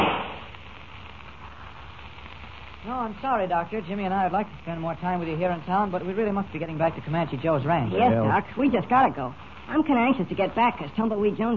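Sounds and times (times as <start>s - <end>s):
gunshot in a western radio drama: 0.0s - 0.5s
speech: 2.8s - 11.5s.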